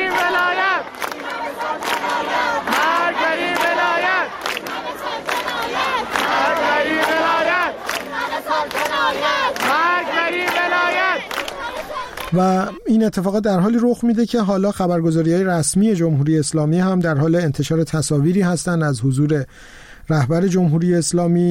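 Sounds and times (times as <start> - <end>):
large crowd of university students chanting slogans at a protest: 0.0 - 12.8
speech: 12.3 - 21.5.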